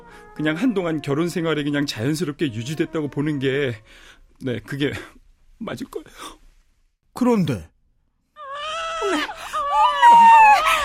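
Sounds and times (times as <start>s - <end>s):
speech: 0.4s - 6.4s, 7.2s - 7.7s, 10.1s - 10.4s
newborn baby girl crying: 8.4s - 10.8s.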